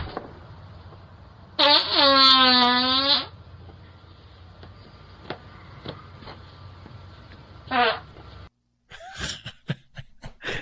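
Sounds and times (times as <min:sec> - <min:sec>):
fart recorded by a doorbell camera played back: 0:01.6 - 0:03.4, 0:07.7 - 0:08.2
laughter: 0:08.9 - 0:10.6.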